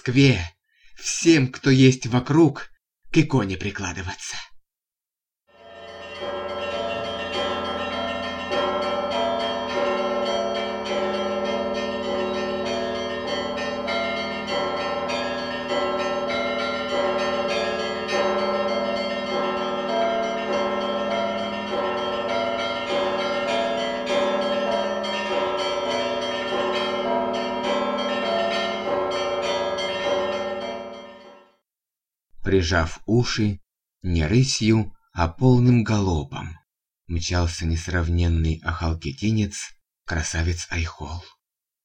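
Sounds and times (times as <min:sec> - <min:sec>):
speech: 0:00.0 - 0:04.5, 0:32.5 - 0:41.4
festive peal of church bells ringing in Moscow: 0:05.5 - 0:31.6.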